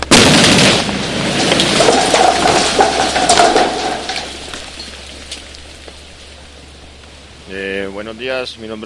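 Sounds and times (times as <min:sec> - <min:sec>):
roar of debris from rock blasting: 0:00.0 - 0:05.4
controlled explosive blasting of a rock about six metres in radius: 0:00.0 - 0:05.8
speech: 0:08.0 - 0:08.8.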